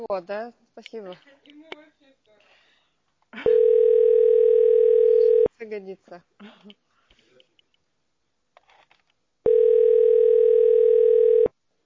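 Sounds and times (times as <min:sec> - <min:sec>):
speech: 0:00.0 - 0:01.4, 0:05.6 - 0:06.8
telephone ringback tone while calling someone: 0:03.5 - 0:05.5, 0:09.5 - 0:11.5.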